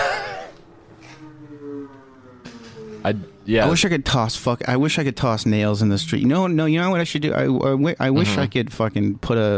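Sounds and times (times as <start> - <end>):
jet plane droning overhead outside: 0.0 - 7.2
speech: 3.0 - 9.5.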